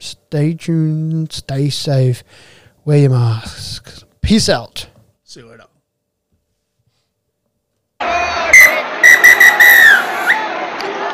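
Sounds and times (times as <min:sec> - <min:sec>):
speech: 0:00.3 - 0:05.7
stadium crowd murmuring: 0:08.0 - 0:11.1
referee's whistle blown: 0:08.4 - 0:10.5.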